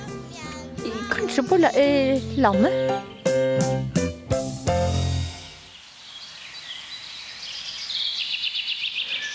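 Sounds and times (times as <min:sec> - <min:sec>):
loud sustained musical chords: 0:00.8 - 0:05.7
speech: 0:01.2 - 0:03.2
birds singing in a forest on a sunny summer day: 0:02.2 - 0:04.2, 0:05.5 - 0:09.3.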